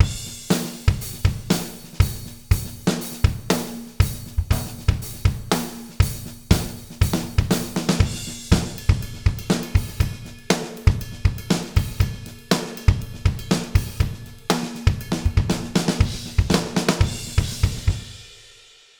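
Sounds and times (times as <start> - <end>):
raw drum: 0.0 - 18.6.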